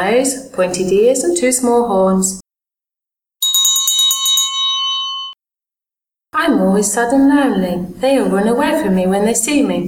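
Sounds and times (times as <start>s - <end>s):
speech: 0.0s - 2.4s, 6.6s - 9.8s
little bells on a pointed hat jingling: 3.4s - 5.4s.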